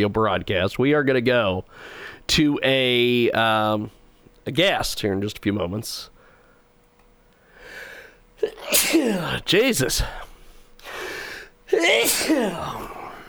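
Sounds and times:
speech: 0:00.0 - 0:06.1, 0:08.4 - 0:10.3, 0:11.7 - 0:13.0
sneeze: 0:08.4 - 0:10.2, 0:11.7 - 0:13.2.

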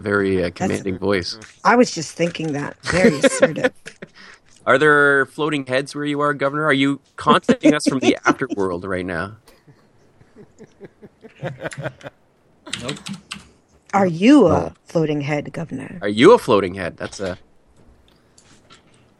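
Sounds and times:
speech: 0:00.0 - 0:04.0, 0:04.6 - 0:09.5, 0:10.6 - 0:17.5
faint low hum: 0:00.0 - 0:19.1
laughter: 0:02.8 - 0:04.4, 0:07.6 - 0:12.1
loud typing on a computer keyboard: 0:12.7 - 0:13.5.

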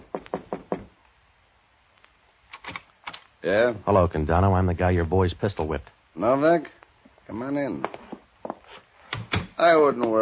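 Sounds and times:
knocking on a wooden office door: 0:00.0 - 0:00.9
speech: 0:03.4 - 0:08.0, 0:09.6 - 0:10.1.

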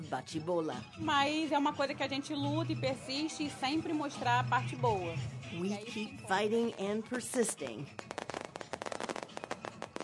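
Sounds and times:
speech: 0:00.0 - 0:08.1
music: 0:00.0 - 0:10.0
dense barrage of fireworks crackling and popping: 0:05.9 - 0:10.0.

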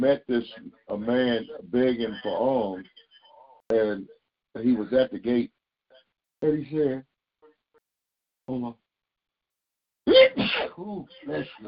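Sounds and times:
speech: 0:00.0 - 0:03.0, 0:03.7 - 0:05.6, 0:06.4 - 0:07.1, 0:08.5 - 0:08.8, 0:10.1 - 0:11.6
person sneezing: 0:10.1 - 0:10.8.

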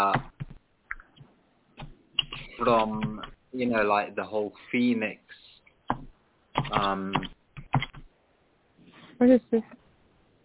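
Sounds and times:
computer keyboard typing: 0:01.8 - 0:03.4, 0:05.9 - 0:08.1
person murmuring: 0:02.2 - 0:03.2, 0:06.7 - 0:07.3
speech: 0:02.6 - 0:05.3, 0:06.7 - 0:07.3, 0:09.2 - 0:09.8.

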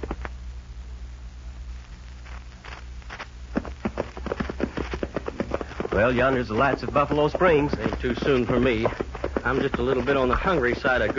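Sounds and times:
low hum: 0:00.0 - 0:11.1
horses' hooves clip-clopping as a group of riders approach after dark: 0:03.1 - 0:11.1
speech: 0:06.0 - 0:11.1.

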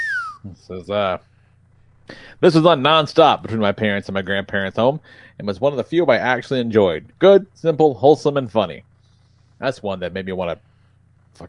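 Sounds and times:
whistled TV sitcom theme tune: 0:00.0 - 0:00.4
low hum: 0:00.0 - 0:11.4
speech: 0:00.4 - 0:01.3, 0:02.1 - 0:08.9, 0:09.6 - 0:10.7.

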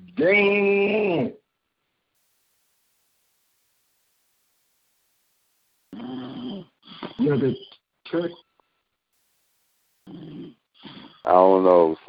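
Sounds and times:
speech: 0:00.2 - 0:00.8, 0:07.3 - 0:08.5, 0:11.2 - 0:12.0
snoring: 0:05.9 - 0:07.2, 0:10.0 - 0:11.4.

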